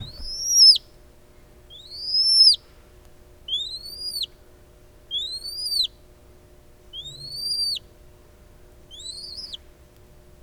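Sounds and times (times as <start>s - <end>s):
noble snipe giving loud arched whistles: 0.0s - 0.8s, 1.7s - 2.6s, 3.5s - 4.3s, 5.1s - 5.9s, 7.0s - 7.8s, 8.9s - 9.6s.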